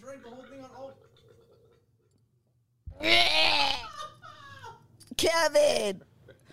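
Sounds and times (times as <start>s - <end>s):
strained throat noise of person trying to burp after drinking a shot: 3.0s - 3.9s
laughter: 3.7s - 4.9s
speech: 5.2s - 6.1s.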